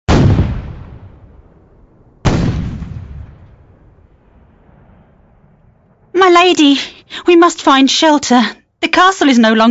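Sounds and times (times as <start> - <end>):
cannon blasts: 0.1 - 6.0
speech: 6.2 - 9.6.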